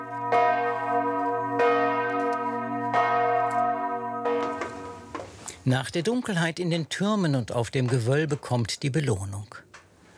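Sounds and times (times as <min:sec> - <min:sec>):
large church bells ringing: 0:00.0 - 0:05.3
speech: 0:05.7 - 0:09.6.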